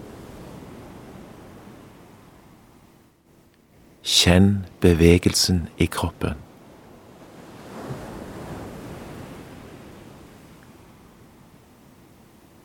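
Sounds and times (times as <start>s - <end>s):
ocean surf washing onto the shore: 0.0s - 2.3s, 4.1s - 11.4s
speech: 4.0s - 6.5s.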